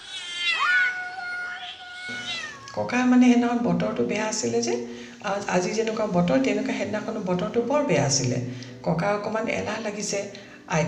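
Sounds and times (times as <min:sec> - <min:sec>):
two kittens meowing while running about: 0:00.0 - 0:02.8
speech: 0:02.1 - 0:10.8.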